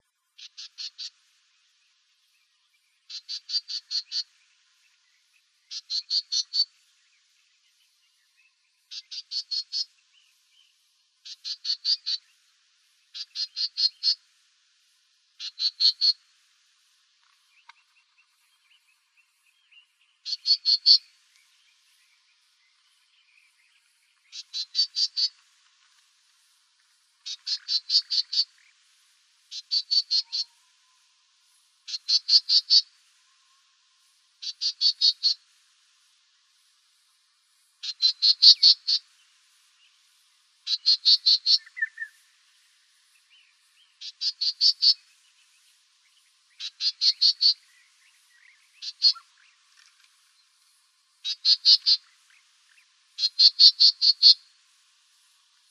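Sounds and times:
gnatcatcher calls: 0.4s - 1.3s, 3.1s - 4.7s, 5.7s - 6.7s, 8.9s - 9.9s, 11.2s - 12.2s, 13.1s - 14.2s, 15.4s - 16.2s, 20.2s - 21.1s, 24.3s - 25.7s, 27.2s - 28.8s, 29.5s - 31.0s, 31.9s - 32.9s, 34.4s - 35.5s, 37.8s - 39.1s, 40.6s - 42.2s, 43.9s - 45.1s, 46.5s - 47.7s, 48.4s - 50.0s, 51.2s - 54.5s
wren calls: 0.4s - 1.4s, 3.0s - 4.8s, 5.6s - 6.9s, 8.9s - 10.0s, 11.2s - 12.3s, 13.1s - 14.2s, 15.4s - 16.2s, 19.8s - 22.6s, 24.2s - 25.6s, 27.2s - 28.9s, 29.5s - 31.2s, 31.8s - 33.7s, 34.4s - 35.5s, 37.8s - 39.2s, 40.6s - 42.3s, 43.9s - 45.2s, 46.2s - 54.6s
kinglet calls: 3.1s - 4.4s, 5.7s - 6.7s, 8.9s - 9.9s, 11.2s - 12.2s, 15.4s - 16.2s, 20.2s - 21.1s, 24.3s - 25.4s, 27.2s - 28.7s, 29.5s - 30.9s, 31.9s - 33.4s, 34.4s - 35.4s, 37.8s - 39.1s, 40.6s - 42.2s, 43.9s - 45.1s, 46.5s - 50.0s, 51.2s - 54.5s.

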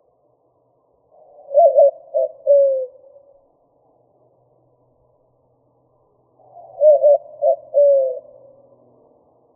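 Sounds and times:
white-winged dove cooing: 1.2s - 3.1s, 6.6s - 8.5s.

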